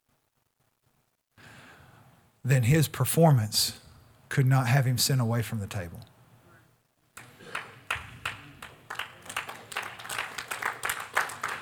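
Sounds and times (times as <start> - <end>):
speech: 2.4 - 3.8, 4.4 - 6.1
audience clapping: 7.1 - 11.5.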